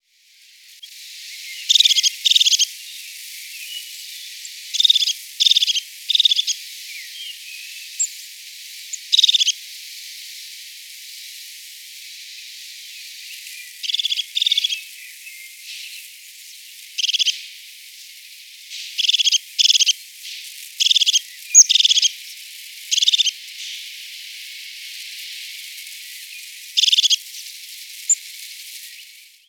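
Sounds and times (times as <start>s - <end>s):
crested tit singing: 1.4s - 2.7s, 4.8s - 8.2s, 8.9s - 9.5s, 13.4s - 16.0s, 17.0s - 17.4s, 19.0s - 19.9s, 20.8s - 22.1s, 22.9s - 23.8s, 26.3s - 27.2s.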